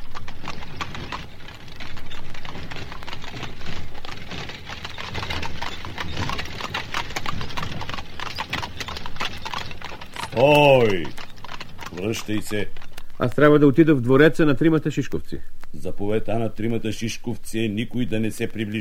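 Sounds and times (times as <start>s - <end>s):
hooves of a horse pulling a carriage clip-clopping: 0.0s - 14.4s
speech: 10.4s - 11.2s, 12.0s - 18.7s.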